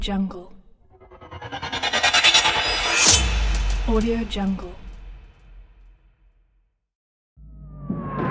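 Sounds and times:
transition impacts: 0.9 - 5.3.

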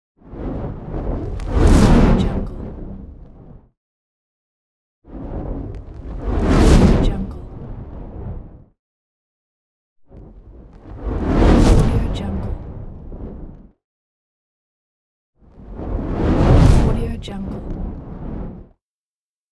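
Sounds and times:
large flaming whoosh: 0.2 - 3.7, 5.1 - 8.8, 10.1 - 13.8, 15.5 - 18.8.

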